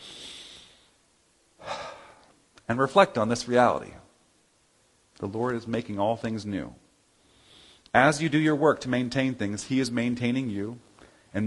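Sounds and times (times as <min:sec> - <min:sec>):
slow deep breath: 0:00.0 - 0:01.0, 0:01.6 - 0:02.4, 0:07.2 - 0:07.9, 0:11.0 - 0:11.4
speech: 0:02.7 - 0:04.0, 0:05.2 - 0:06.8, 0:07.9 - 0:11.4.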